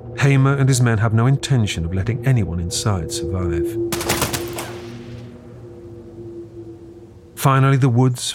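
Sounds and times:
speech: 0:00.1 - 0:04.1, 0:07.4 - 0:08.3
rapid burst of sharp gunshots: 0:03.9 - 0:05.3.

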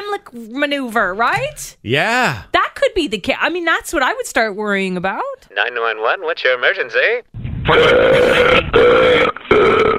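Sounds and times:
speech: 0:00.2 - 0:09.9
person burping: 0:01.4 - 0:02.5.

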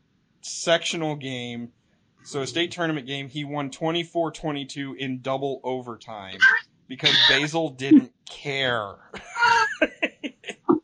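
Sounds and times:
speech: 0:00.4 - 0:10.0
cat crying: 0:06.4 - 0:07.5
laughter: 0:07.0 - 0:08.0, 0:08.7 - 0:10.8.

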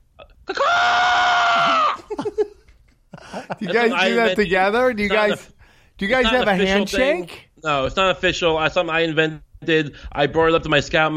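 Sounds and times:
person imitating an eagle call: 0:00.5 - 0:02.0
laughter-like voices: 0:01.6 - 0:04.3
speech: 0:03.6 - 0:11.1.

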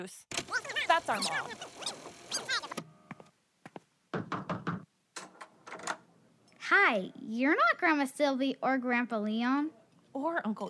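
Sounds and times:
speech: 0:00.0 - 0:02.6, 0:06.7 - 0:10.6
brief squeaky tonal sound: 0:01.2 - 0:02.8
knocking on a door: 0:04.1 - 0:04.9.

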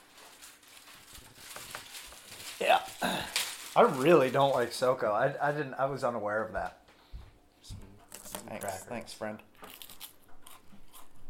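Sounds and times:
speech: 0:03.8 - 0:06.8, 0:08.5 - 0:09.5
crunchy chewing of a palate cleanser: 0:09.6 - 0:11.2.

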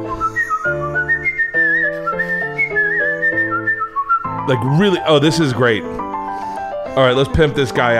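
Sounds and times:
man whistling a loud wavering melody: 0:00.0 - 0:04.6
steady chordal instrumental accompaniment: 0:00.0 - 0:07.9
speech: 0:04.5 - 0:06.0, 0:07.0 - 0:07.9.

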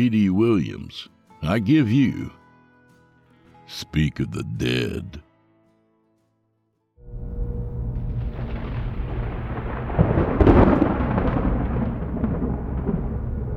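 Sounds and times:
speech: 0:00.0 - 0:02.4, 0:03.7 - 0:05.2
low rumbling thunder: 0:07.4 - 0:13.5.

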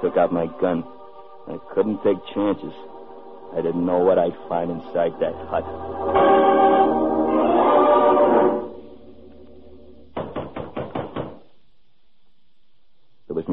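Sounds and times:
sustained tonal swell: 0:00.0 - 0:10.2
speech: 0:00.2 - 0:06.3
firm sharp knocks on the wooden door of a lone hut: 0:10.2 - 0:11.5.

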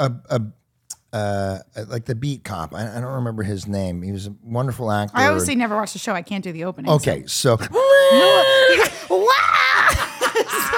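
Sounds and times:
speech: 0:00.0 - 0:10.0
person screaming shrilly: 0:07.7 - 0:10.1
person yelling excitedly: 0:07.8 - 0:09.9
laughter: 0:08.0 - 0:10.7.

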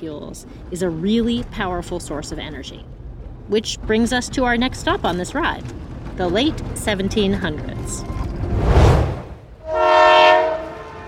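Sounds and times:
speech: 0:00.0 - 0:08.2
train rumbling past: 0:00.0 - 0:11.0
train horn blast: 0:09.6 - 0:11.0.

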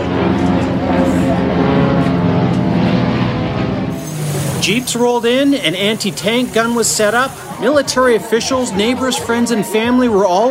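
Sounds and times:
propeller planes droning overhead: 0:00.0 - 0:10.4
speech: 0:04.7 - 0:10.4.

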